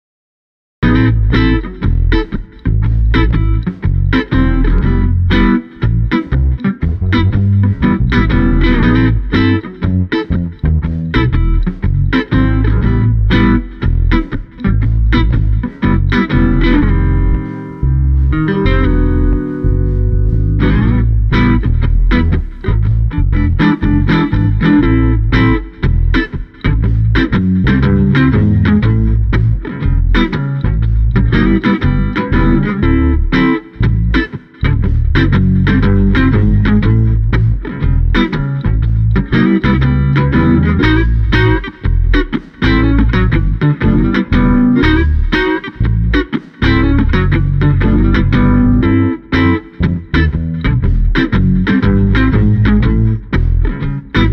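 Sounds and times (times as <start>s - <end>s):
relaxed funky bass guitar at 120: 0.8s - 54.3s.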